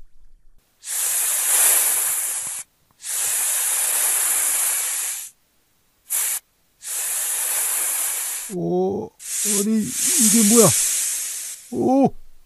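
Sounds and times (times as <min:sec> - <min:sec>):
snakes hissing: 0:00.8 - 0:05.4, 0:06.0 - 0:12.1
brief vocal cry: 0:08.5 - 0:10.7, 0:11.7 - 0:12.2
speech: 0:08.5 - 0:10.9, 0:11.7 - 0:12.2.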